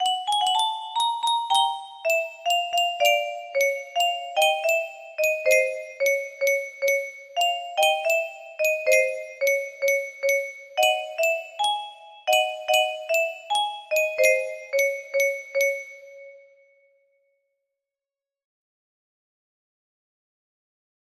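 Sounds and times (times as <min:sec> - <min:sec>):
music box melody: 0:00.0 - 0:16.6.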